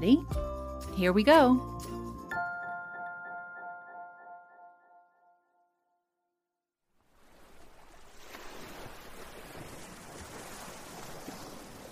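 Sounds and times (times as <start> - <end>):
speech: 0.0 - 2.0
ringing chime: 2.3 - 6.0
ocean waves breaking on a beach: 7.0 - 11.8.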